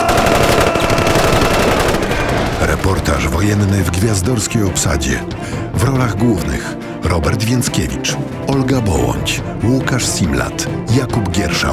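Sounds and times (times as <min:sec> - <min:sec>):
machine-gun fire as covering fire in a wartime drama: 0:00.0 - 0:03.4
speech: 0:03.2 - 0:11.7.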